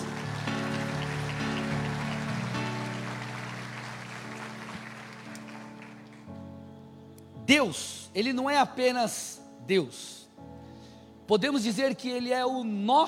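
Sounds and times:
large crowd clapping: 0.0s - 6.4s
sustained keyboard chords: 0.0s - 9.8s
speech: 7.5s - 10.2s, 11.3s - 13.0s.

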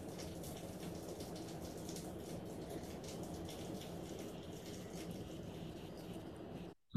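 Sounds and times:
steady rain: 0.0s - 6.7s.

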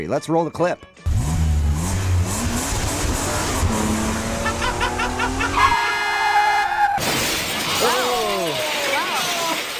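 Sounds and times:
modified Toyota Prius engine revving doing donuts on black ice in a parking lot: 1.1s - 6.6s
tire squeals: 4.3s - 7.0s
sudden impact and shattering crash: 7.0s - 9.7s.

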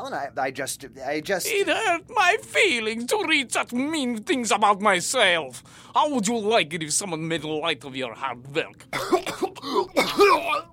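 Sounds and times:
speech: 0.1s - 10.7s
person coughing up blood: 8.9s - 10.7s.

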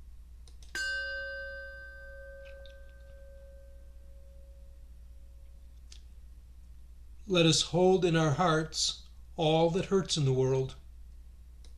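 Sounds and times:
quiet low hum: 0.0s - 11.7s
single clear metallic chime ringing: 0.8s - 4.8s
speech: 7.3s - 10.8s.

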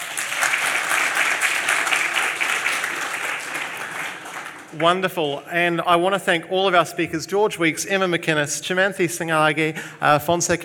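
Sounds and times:
audience in Auckland applauding: 0.0s - 5.0s
speech: 4.8s - 10.6s.

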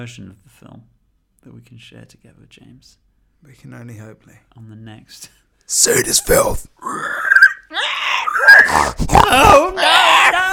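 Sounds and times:
speech: 0.0s - 7.1s
pigs grunting, snorting and squealing: 6.8s - 10.5s.

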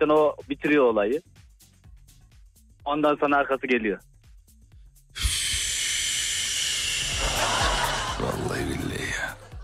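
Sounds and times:
speech: 0.0s - 1.4s, 2.8s - 4.1s
long deep inhale of icy air: 5.2s - 7.2s
laughter: 6.9s - 9.6s.

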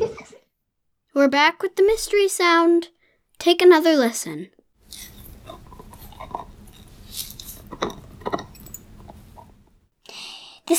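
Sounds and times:
speech: 1.2s - 4.6s
low hiss: 4.8s - 9.8s
puppy gnawing a nylon chew bone: 4.8s - 9.8s.

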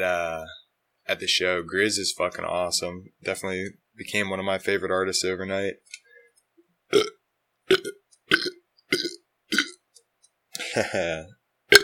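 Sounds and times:
speech: 0.0s - 6.0s, 6.9s - 7.1s, 10.8s - 11.4s
person burping from drinking carbonated water: 6.9s - 9.8s, 10.6s - 11.8s.

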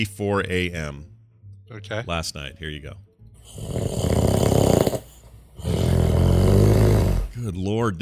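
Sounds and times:
speech: 0.0s - 1.1s, 1.7s - 4.4s, 7.4s - 7.9s
man snoring loudly in his sleep: 3.4s - 7.4s.

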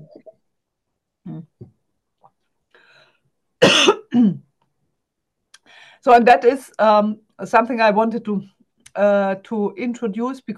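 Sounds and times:
person clearing throat: 3.6s - 4.4s
person coughing: 3.6s - 4.4s
speech: 6.0s - 10.5s.

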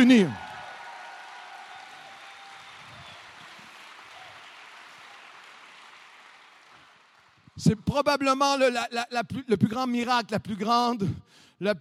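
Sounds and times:
speech: 0.0s - 0.4s, 7.6s - 11.7s
large church audience applauding: 0.0s - 7.6s.

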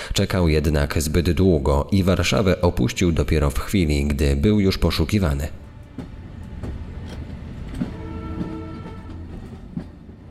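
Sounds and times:
speech: 0.2s - 5.6s
train rumbling along the rails: 3.6s - 10.2s
train wheels clacking over track joints: 5.9s - 10.2s.

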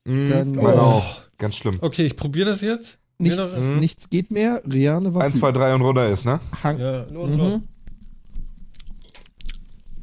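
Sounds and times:
speech: 0.0s - 7.7s
chewing a rubbery tough squid snack: 6.9s - 10.0s.

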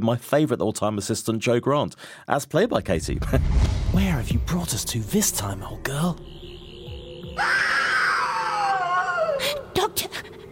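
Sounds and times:
speech: 0.0s - 6.4s, 7.4s - 7.7s
loud sustained high-pitched scream: 6.4s - 9.4s.

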